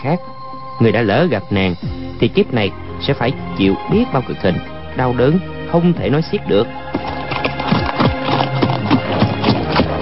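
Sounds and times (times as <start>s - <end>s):
speech: 0.0s - 7.2s
two horses' hooves clip-clopping on a hard surface: 6.8s - 9.9s.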